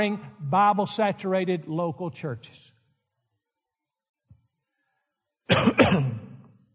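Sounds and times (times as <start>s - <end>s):
speech: 0.0s - 2.7s, 5.5s - 6.2s
person coughing loudly with a throaty rasp: 5.5s - 6.6s.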